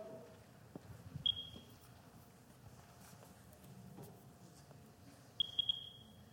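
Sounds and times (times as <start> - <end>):
radiation detector beeping near radioactive rock: 1.2 - 1.7, 5.4 - 6.2.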